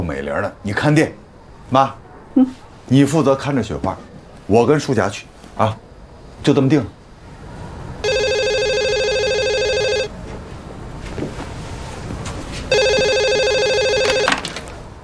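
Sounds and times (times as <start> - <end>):
speech: 0.0 - 5.8, 6.4 - 7.0
telephone ringing with bright electronic trills: 8.0 - 10.1, 12.7 - 14.5.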